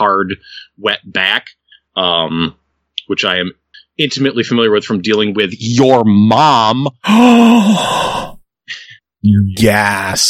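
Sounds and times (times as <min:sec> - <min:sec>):
speech: 0:00.0 - 0:10.2
person gasping dramatically: 0:07.0 - 0:08.9.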